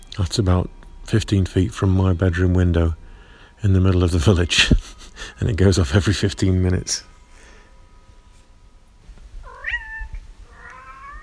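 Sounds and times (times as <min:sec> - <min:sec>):
speech: 0:00.2 - 0:03.0, 0:03.6 - 0:07.1
laughter: 0:04.5 - 0:05.3
cat meowing and yowling: 0:09.4 - 0:11.2.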